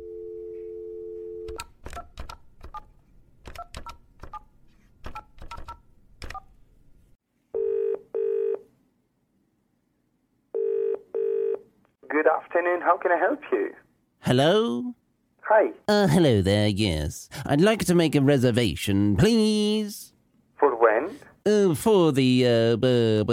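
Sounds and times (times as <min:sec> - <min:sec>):
telephone dial tone: 0:00.0 - 0:01.6, 0:07.6 - 0:08.6, 0:10.6 - 0:11.6
telephone keypad beeps dialing a number: 0:05.1 - 0:06.5
speech: 0:12.3 - 0:20.1, 0:21.5 - 0:23.3.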